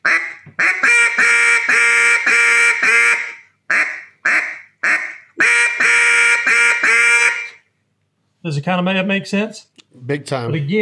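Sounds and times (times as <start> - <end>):
raspy quacks blown on a duck call: 0.0 - 7.7
speech: 8.5 - 10.8.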